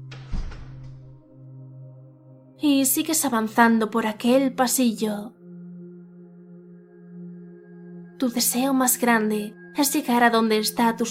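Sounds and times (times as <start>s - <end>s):
door shutting with heavy thud: 0.0s - 1.2s
speech: 2.6s - 5.4s, 8.2s - 11.0s.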